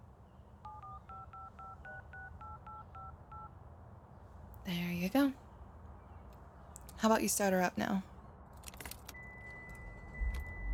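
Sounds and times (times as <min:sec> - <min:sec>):
low hum: 0:00.0 - 0:10.7
dual-tone phone keypad beeps: 0:00.6 - 0:03.5, 0:09.1 - 0:10.7
speech: 0:04.7 - 0:05.4, 0:07.0 - 0:08.1.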